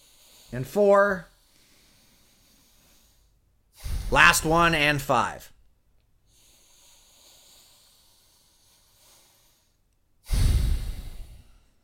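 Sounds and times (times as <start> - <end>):
speech: 0.5 - 1.3, 4.1 - 5.5
deep exhale during a slow breathing exercise: 1.3 - 4.4, 6.3 - 11.8.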